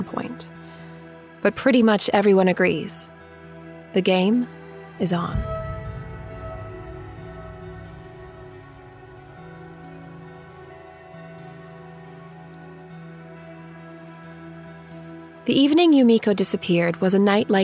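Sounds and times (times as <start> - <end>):
speech: 1.4 - 3.2, 3.9 - 5.5, 15.5 - 17.6
low sustained tonal hum: 5.0 - 15.6
rain pattering on a surface on an overcast evening: 7.3 - 17.6.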